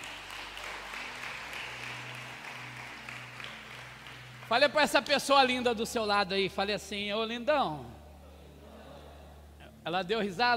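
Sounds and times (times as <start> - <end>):
congregation applauding: 0.0 - 5.8
speech: 4.5 - 8.0, 9.8 - 10.5.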